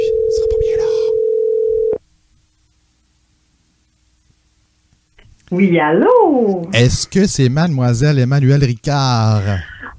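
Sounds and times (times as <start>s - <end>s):
telephone ringing with an electronic tone: 0.0s - 2.0s
speech: 5.5s - 9.7s.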